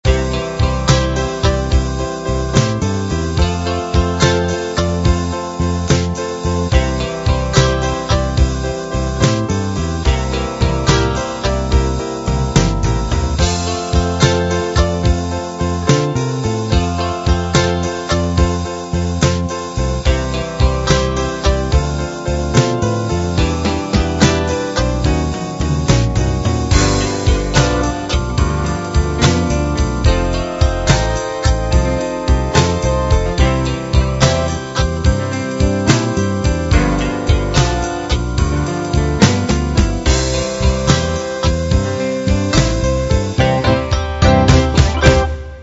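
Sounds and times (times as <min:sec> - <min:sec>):
blues music: 0:00.0 - 0:45.6.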